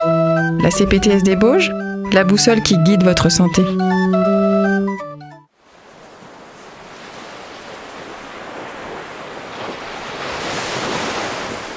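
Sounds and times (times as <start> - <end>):
musical chime: 0.0 - 5.4
speech: 0.6 - 4.2
sea waves rolling onto the shore in the early morning: 5.6 - 11.7.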